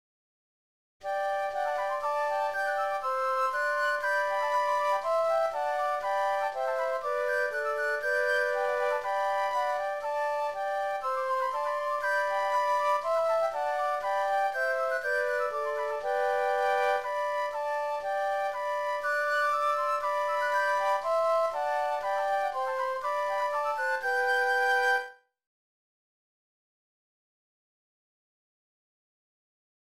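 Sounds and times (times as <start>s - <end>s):
flutes playing a hymn: 1.0s - 25.2s.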